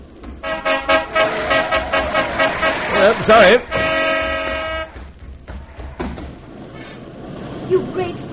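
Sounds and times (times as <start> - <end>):
car horns honking in busy street traffic on a broad boulevard: 0.3 - 5.3
speech: 3.0 - 3.8.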